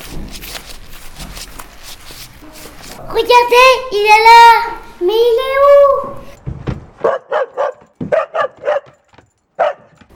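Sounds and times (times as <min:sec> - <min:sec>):
speech: 0:03.1 - 0:06.2
dog barking: 0:07.0 - 0:10.0.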